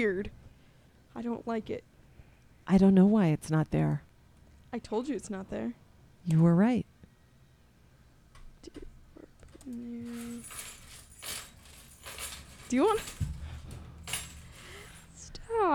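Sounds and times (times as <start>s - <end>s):
speech: 0.0s - 0.4s, 1.2s - 1.9s, 2.7s - 4.1s, 4.7s - 6.8s, 8.7s - 8.9s, 9.7s - 10.7s, 12.7s - 13.3s, 15.5s - 15.7s
keys jangling: 9.5s - 15.4s.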